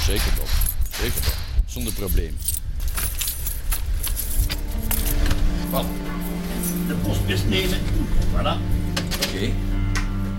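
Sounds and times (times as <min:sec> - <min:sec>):
large bunch of house keys jingling and clinking: 0:00.0 - 0:01.2, 0:01.8 - 0:07.3
low rumbling background: 0:00.0 - 0:10.3
speech: 0:00.1 - 0:02.7, 0:05.7 - 0:09.7.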